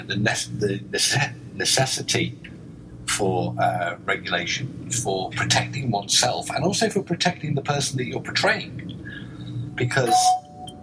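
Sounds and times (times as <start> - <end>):
low voice murmuring: 0.0 - 2.3, 3.1 - 10.2
speech: 0.0 - 2.5, 3.1 - 9.0, 9.8 - 10.4
doorbell chime: 10.1 - 10.8.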